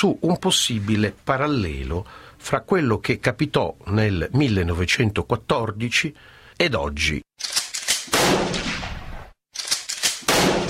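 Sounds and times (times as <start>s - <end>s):
speech: 0.0s - 7.6s
pistol shots in the streets: 7.8s - 10.6s.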